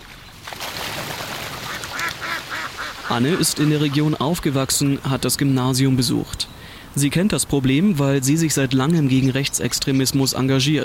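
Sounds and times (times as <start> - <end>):
steady outdoor hiss: 0.0 - 10.8
flock of ducks quacking: 1.5 - 5.2
speech: 3.1 - 10.8.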